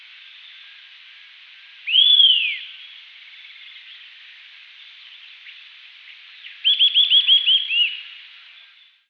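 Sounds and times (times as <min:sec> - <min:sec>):
Eastern sirystes (Sirystes sibilator) calling with whistled notes: 0:01.8 - 0:02.8, 0:06.4 - 0:08.2.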